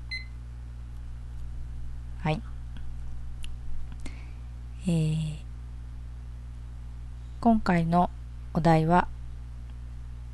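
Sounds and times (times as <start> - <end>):
short high electronic timer beep as a timer is set and started: 0.0 - 0.3
steady low hum: 0.0 - 10.3
speech: 2.2 - 2.5, 4.8 - 5.4, 7.4 - 9.2.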